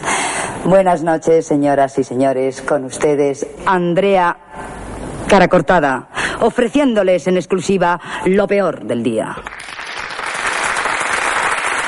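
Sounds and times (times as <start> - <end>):
speech: 0.7 - 4.6, 5.3 - 9.6
recorded crowd applause track: 9.5 - 11.8.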